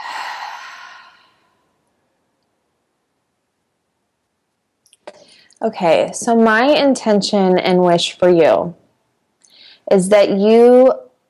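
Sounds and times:
deep breath exhaled through the mouth: 0:00.0 - 0:01.4
speech: 0:05.6 - 0:08.8, 0:09.9 - 0:11.0.

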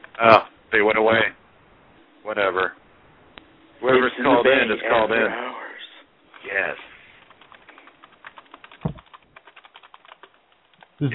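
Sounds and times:
speech: 0:00.2 - 0:01.4, 0:02.2 - 0:02.8, 0:03.8 - 0:05.6, 0:06.4 - 0:06.9
rapid typing on a computer keyboard: 0:07.2 - 0:11.0
heavier thump on a computer keyboard: 0:08.8 - 0:09.0.

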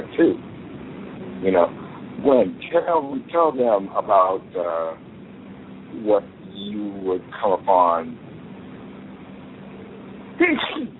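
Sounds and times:
faint steady hiss: 0:00.0 - 0:10.9
speech: 0:00.2 - 0:00.5, 0:01.4 - 0:05.1, 0:05.9 - 0:08.2, 0:10.4 - 0:10.9
person sneezing: 0:10.6 - 0:10.9.

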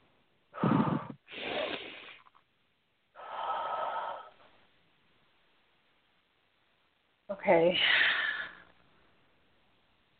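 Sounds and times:
slow deep human breathing in a guided relaxation exercise: 0:00.5 - 0:02.3, 0:03.2 - 0:04.6, 0:07.8 - 0:08.8
speech: 0:07.4 - 0:08.1.

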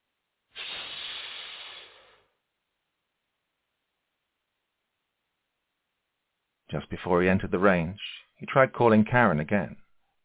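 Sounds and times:
steam hissing from red-hot coins: 0:00.6 - 0:02.2
speech: 0:06.7 - 0:09.8.

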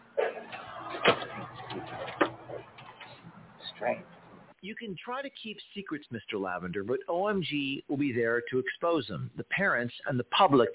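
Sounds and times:
door being opened: 0:00.2 - 0:03.2
speech: 0:01.0 - 0:01.3, 0:03.8 - 0:10.7.

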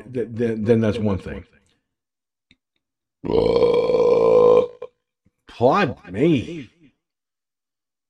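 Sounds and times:
speech: 0:00.1 - 0:01.6, 0:03.2 - 0:03.9, 0:05.6 - 0:06.7
person burping after drinking coffee: 0:03.2 - 0:05.1.

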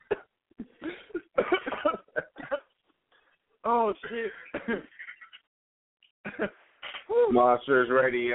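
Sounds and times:
person coughing after choking on a grain of rice: 0:00.0 - 0:02.7, 0:04.0 - 0:04.9
speech: 0:03.7 - 0:05.0, 0:06.4 - 0:06.6, 0:07.3 - 0:08.3.

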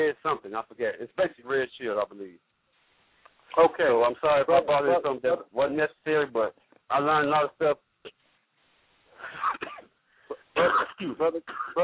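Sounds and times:
speech: 0:00.0 - 0:02.5, 0:03.5 - 0:08.2, 0:10.6 - 0:11.8
person clearing throat over a call line: 0:09.2 - 0:11.8
person coughing over a call line: 0:09.2 - 0:11.8.

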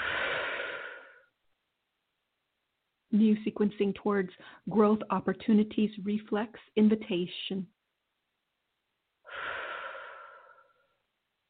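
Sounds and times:
deep breath: 0:00.0 - 0:01.3, 0:09.2 - 0:11.1
speech: 0:03.1 - 0:07.8.

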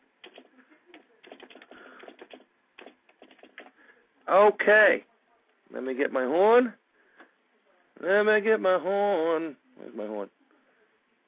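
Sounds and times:
typing on a computer keyboard: 0:00.2 - 0:03.8
speech: 0:04.3 - 0:05.1, 0:05.7 - 0:06.8, 0:08.0 - 0:10.4.

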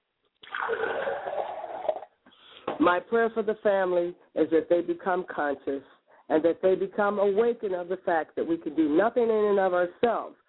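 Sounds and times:
liquid poured out as a libation during an ancestral ceremony: 0:00.4 - 0:02.1
speech: 0:02.9 - 0:10.4.

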